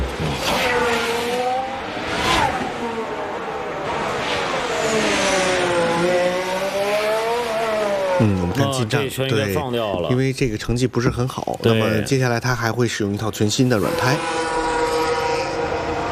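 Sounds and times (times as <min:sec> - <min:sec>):
race car engine revving around a circuit over the kerbs: 0:00.0 - 0:08.7, 0:13.6 - 0:16.0
commentator talking: 0:08.2 - 0:14.2
speech: 0:08.2 - 0:14.5.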